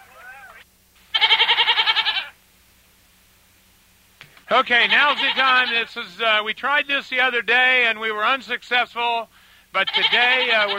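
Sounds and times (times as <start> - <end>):
goat bleating with quavering tremolo: 0.0 - 2.4, 4.6 - 6.1, 9.8 - 10.7
speech: 4.5 - 10.7.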